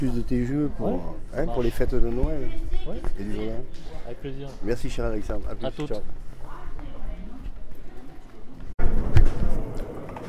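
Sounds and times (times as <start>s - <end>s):
speech: 0.0s - 6.3s
indistinct murmur of many voices at an outdoor market: 0.0s - 10.2s.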